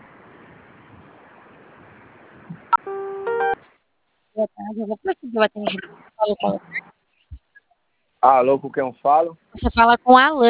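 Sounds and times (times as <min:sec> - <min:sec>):
telephone keypad tones from pressing zero during an automated call: 0:02.8 - 0:03.6
speech: 0:04.4 - 0:06.8, 0:08.2 - 0:10.4.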